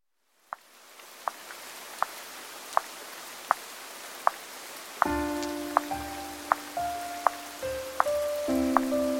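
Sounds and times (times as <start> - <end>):
steady rain hissing against a surface: 0.1 - 9.1
soft melodic music: 5.0 - 9.1.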